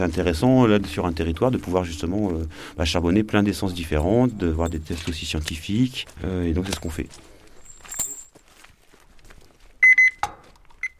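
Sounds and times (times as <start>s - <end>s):
speech: 0.0s - 7.3s
shuffling and handling noises: 0.0s - 10.9s
thermometer beeping: 9.8s - 10.9s.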